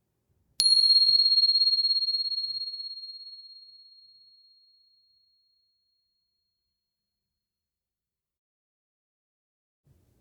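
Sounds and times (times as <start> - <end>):
meditation bell ringing: 0.6 - 4.2.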